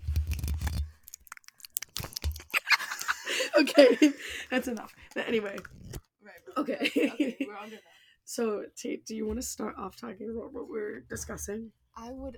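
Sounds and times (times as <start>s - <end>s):
slime being opened and squished for ASMR: 0.1s - 2.6s
laughter: 2.4s - 5.6s, 6.5s - 8.0s
speech: 3.6s - 5.8s, 6.6s - 12.3s.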